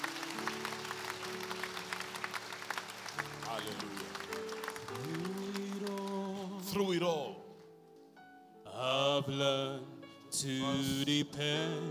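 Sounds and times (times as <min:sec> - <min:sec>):
crowd clapping in dense overlapping applause: 0:00.0 - 0:06.9
speech: 0:03.6 - 0:04.0, 0:06.8 - 0:07.4, 0:08.8 - 0:11.9.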